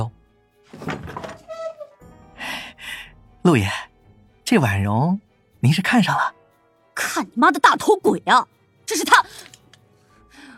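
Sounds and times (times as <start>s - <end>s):
door creaking squeak: 0.8s - 2.0s
speech: 3.4s - 3.9s, 4.5s - 6.4s, 7.1s - 9.5s.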